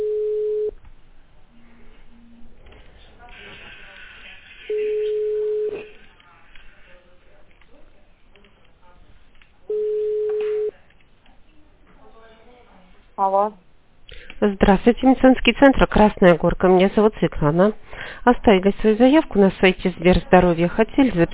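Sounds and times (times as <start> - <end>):
telephone ringback tone from an automated medical centre system: 0.0 - 0.8, 4.7 - 5.9, 9.7 - 10.7
speech: 13.4 - 13.6, 14.4 - 21.3.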